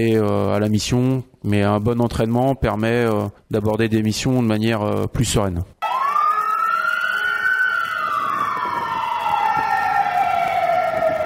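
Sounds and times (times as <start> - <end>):
speech: 0.0 - 5.7
fire brigade aerial ladder truck siren wailing: 5.8 - 11.2.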